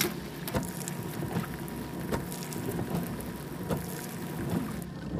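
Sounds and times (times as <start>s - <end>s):
car windshield washer water supply: 0.1s - 5.0s.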